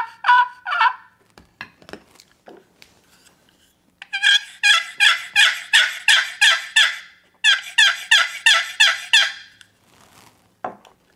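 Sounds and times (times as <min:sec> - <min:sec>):
turkey hunting calls producing raspy yelps: 0:00.0 - 0:01.1, 0:04.0 - 0:09.6.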